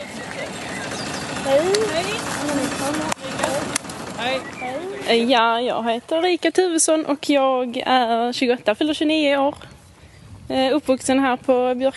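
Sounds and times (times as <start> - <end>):
birds cooing and chirping: 0.0 - 5.5
tractor engines rumbling while driving back and forth: 0.0 - 11.9
speech: 4.2 - 9.7, 10.5 - 11.9.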